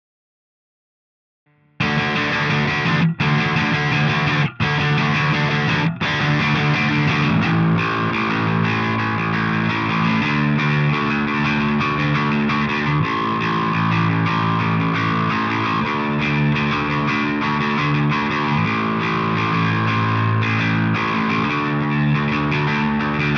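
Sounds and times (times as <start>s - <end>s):
bass: 1.8s - 23.3s.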